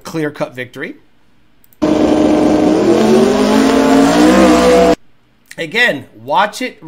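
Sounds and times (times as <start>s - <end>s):
speech: 0.1s - 1.1s, 5.6s - 6.8s
Honda S2000 race car accelerating hard during a race: 1.8s - 5.0s.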